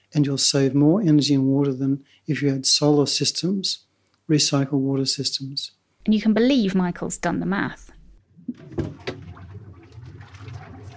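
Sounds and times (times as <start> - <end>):
speech: 0.1 - 9.1
air bubbling through sewage pumped in to aerate it: 8.2 - 10.9.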